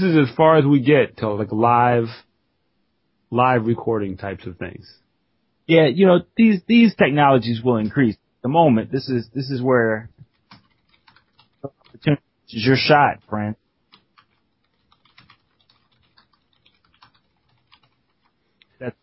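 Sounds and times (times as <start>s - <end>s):
speech: 0.0s - 2.3s, 3.3s - 5.0s, 5.7s - 10.2s, 11.6s - 13.6s, 18.8s - 19.0s
typing on a computer keyboard: 10.2s - 12.0s, 13.8s - 19.0s.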